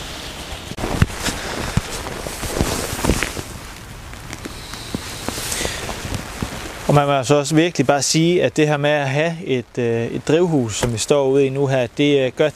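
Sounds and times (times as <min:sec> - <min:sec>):
footsteps walking through the rain to a greenhouse: 0:00.0 - 0:07.0
steady rain pattering outdoors in a garden: 0:00.0 - 0:12.5
speech: 0:06.9 - 0:12.5.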